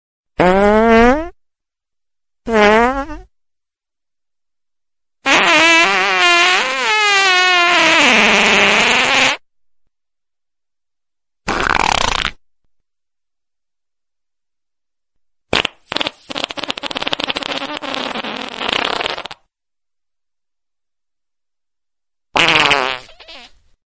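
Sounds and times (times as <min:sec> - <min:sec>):
funny fart sound: 0:00.4 - 0:01.4, 0:02.5 - 0:03.3, 0:05.2 - 0:09.4, 0:11.4 - 0:12.4, 0:15.5 - 0:19.5, 0:22.3 - 0:23.6.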